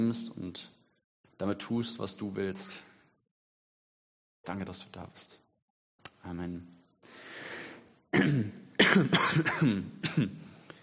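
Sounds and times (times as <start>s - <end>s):
speech: 0.0s - 0.8s, 1.4s - 2.9s, 4.4s - 5.4s, 6.2s - 6.8s, 8.1s - 10.4s
harsh coughs: 8.1s - 10.5s
breathy throat-clearing rasp: 8.2s - 10.6s.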